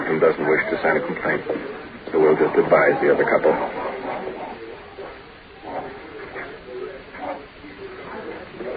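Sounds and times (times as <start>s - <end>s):
speech: 0.2s - 3.9s
Great Dane dogs barking in deep woofs: 3.4s - 6.6s.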